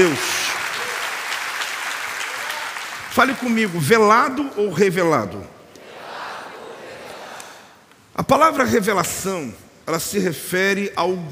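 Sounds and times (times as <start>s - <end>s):
speech: 0.0s - 0.3s, 3.2s - 5.6s, 8.2s - 11.3s
audience clapping: 0.0s - 4.4s.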